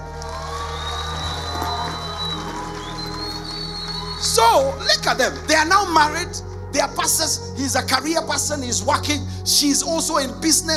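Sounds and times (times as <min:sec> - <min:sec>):
audience applauding and cheering: 0:00.0 - 0:06.3
speech: 0:04.3 - 0:10.7.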